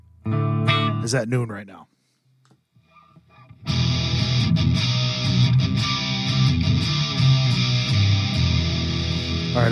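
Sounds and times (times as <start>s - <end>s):
heavily distorted electric guitar chords through a distortion pedal: 0.0s - 1.1s, 3.2s - 9.7s
speech: 1.0s - 1.9s, 9.6s - 9.7s.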